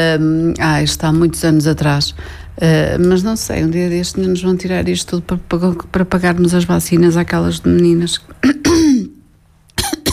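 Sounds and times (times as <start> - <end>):
speech: 0.0 - 8.6
person coughing: 8.4 - 9.2, 9.8 - 10.1.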